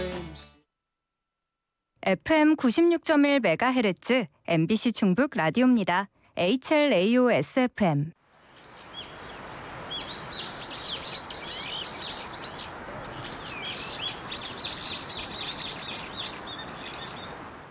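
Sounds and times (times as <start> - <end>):
speech: 2.1 - 8.2
several birds chirping and trilling: 8.4 - 17.6.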